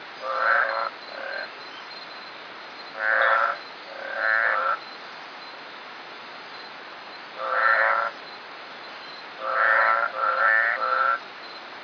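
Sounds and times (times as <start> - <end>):
Hylidae Smilisca phaeota frog: 0.0 - 5.5, 7.3 - 8.4, 9.0 - 11.6.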